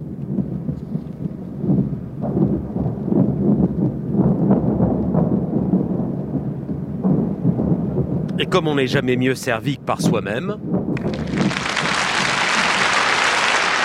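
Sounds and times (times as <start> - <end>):
explosions of an air raid on London at night: 0.0 - 13.8
speech: 8.5 - 10.7
crowd applauding: 11.0 - 13.8.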